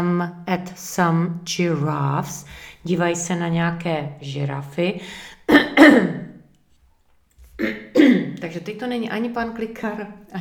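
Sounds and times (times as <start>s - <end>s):
speech: 0.0s - 6.2s, 7.6s - 10.3s
person clearing throat: 5.5s - 6.4s, 7.6s - 8.4s
person coughing: 5.5s - 6.4s, 7.6s - 8.4s.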